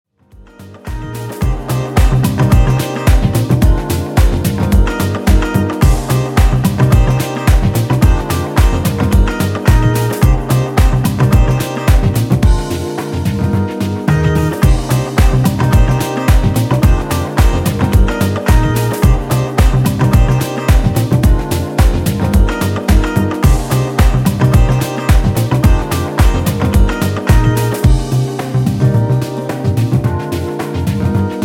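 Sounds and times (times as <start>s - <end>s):
uplifting funky lounge groove: 0.5s - 31.4s.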